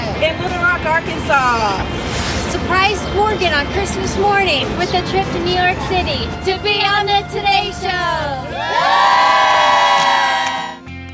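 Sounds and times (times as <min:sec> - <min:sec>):
speech: 0:00.2 - 0:09.4
studio audience cheering and whooping: 0:08.5 - 0:10.8.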